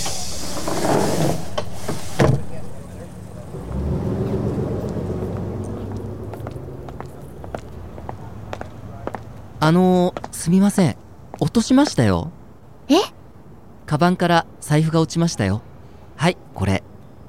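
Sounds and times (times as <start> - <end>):
train doors closing with pneumatic hiss: 0.0 - 3.4
train carriage pulling away: 0.0 - 12.0
speech: 9.7 - 13.2, 13.9 - 16.9.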